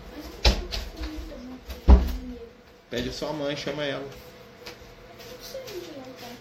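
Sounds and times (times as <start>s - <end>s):
door pushed shut by a young boy: 1.8s - 2.2s
speech: 2.9s - 4.3s.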